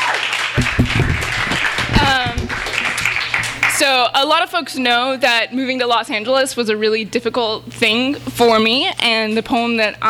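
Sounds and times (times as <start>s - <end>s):
audience applauding: 0.0s - 3.9s
crowd cheering: 0.0s - 4.0s
speech: 3.9s - 10.0s.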